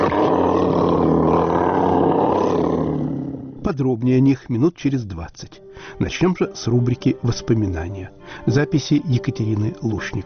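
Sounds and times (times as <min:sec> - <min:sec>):
lion roaring: 0:00.0 - 0:03.7
speech: 0:03.7 - 0:10.2.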